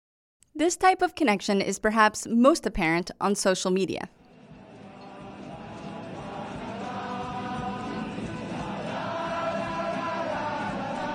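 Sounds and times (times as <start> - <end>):
speech: 0.6 - 4.2
large crowd singing outdoors during the 2019 uprising in Chile: 4.3 - 11.1.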